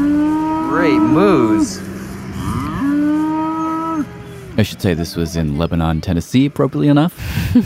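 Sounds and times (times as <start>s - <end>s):
cow mooing on a farm in Lebanon Tennessee: 0.0s - 4.6s
speech: 0.8s - 1.9s, 4.6s - 7.6s.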